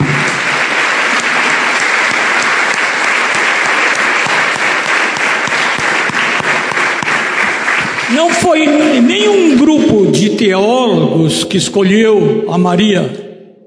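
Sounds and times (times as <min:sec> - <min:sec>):
audience applause: 0:00.0 - 0:09.7
speech: 0:08.2 - 0:13.2.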